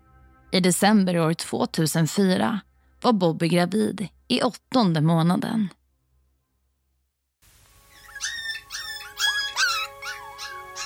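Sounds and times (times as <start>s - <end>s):
speech: 0.5s - 5.8s
dog howling: 8.0s - 10.8s.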